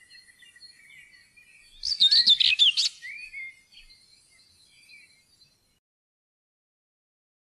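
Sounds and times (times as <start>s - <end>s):
Common whitethroat song: 0.0s - 5.8s.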